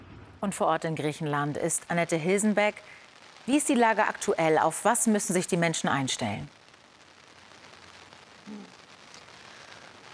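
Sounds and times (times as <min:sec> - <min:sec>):
low thud: 0:00.0 - 0:00.4
heavy rain pattering on surfaces: 0:00.0 - 0:10.1
speech: 0:00.4 - 0:06.6.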